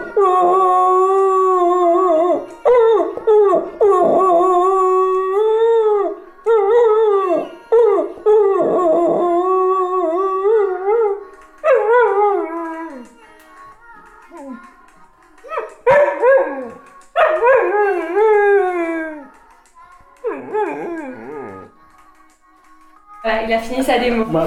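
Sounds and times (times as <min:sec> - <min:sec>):
dog howling along to music: 0:00.0 - 0:13.2, 0:15.5 - 0:19.4, 0:20.2 - 0:21.8
music: 0:00.0 - 0:24.4.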